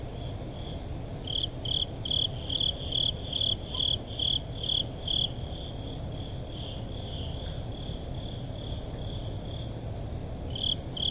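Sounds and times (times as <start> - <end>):
Japanese burrowing cricket chirping: 0.0 - 11.1
low background rumble: 0.0 - 11.1.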